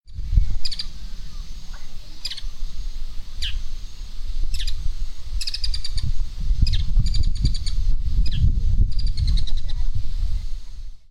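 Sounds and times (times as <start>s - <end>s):
bird giving sharp high chirps: 0.5s - 4.8s, 5.4s - 9.8s.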